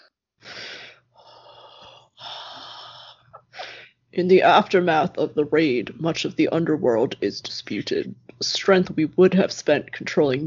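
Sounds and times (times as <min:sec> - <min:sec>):
human voice imitating heavy mechanical respirator breathing: 0:00.5 - 0:03.8
speech: 0:04.2 - 0:10.4.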